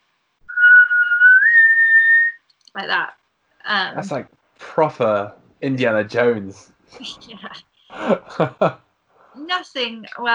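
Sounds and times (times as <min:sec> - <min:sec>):
person whistling a signal call: 0:00.5 - 0:02.4
speech: 0:02.8 - 0:08.8, 0:09.4 - 0:10.3
laughter: 0:04.0 - 0:07.3, 0:07.9 - 0:08.8.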